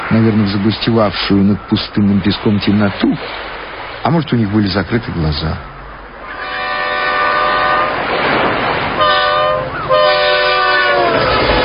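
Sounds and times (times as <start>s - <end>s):
rushing noise: 0.0s - 11.6s
speech: 0.1s - 5.7s
train roaring past overhead: 5.6s - 11.6s
long blaring train horn blasts: 6.2s - 8.0s, 9.0s - 11.6s.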